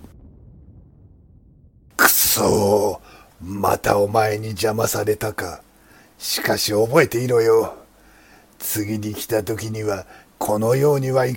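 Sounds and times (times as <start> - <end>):
sharp crack of a lightning strike: 0.0 - 3.2
deep rolling thunder rumble: 0.0 - 3.8
speech: 2.4 - 7.8, 8.6 - 11.3.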